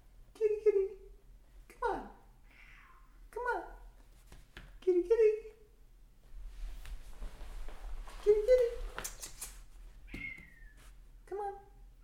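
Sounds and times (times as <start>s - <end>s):
low hum: 0.0s - 12.0s
cat meowing: 2.5s - 3.2s, 10.0s - 10.8s.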